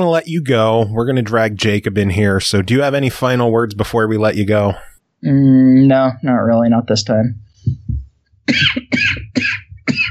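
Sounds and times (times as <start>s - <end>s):
speech: 0.0s - 7.8s, 8.5s - 9.1s
person coughing: 8.5s - 10.1s.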